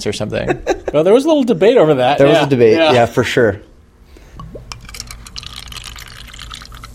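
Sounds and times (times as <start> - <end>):
speech: 0.0 - 3.7
soda being poured into small cups: 4.4 - 6.9.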